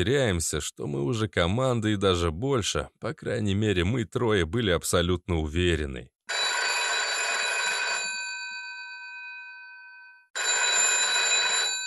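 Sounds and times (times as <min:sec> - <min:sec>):
speech: 0:00.0 - 0:06.2
old dial-less internal-line telephone bell ringing: 0:06.3 - 0:11.8.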